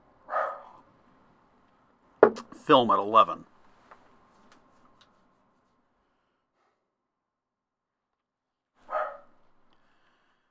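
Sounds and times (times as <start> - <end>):
single short mid-pitched dog bark: 0.3 - 0.8, 8.8 - 9.4
speech: 2.7 - 3.5.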